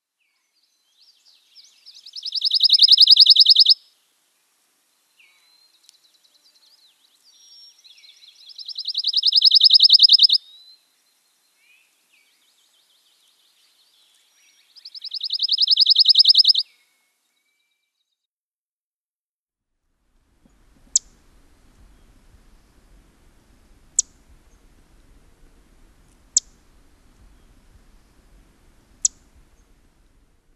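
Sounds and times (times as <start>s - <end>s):
Pine Warbler: 1.0s - 3.8s, 6.6s - 10.4s, 12.2s - 16.6s, 20.5s - 30.5s.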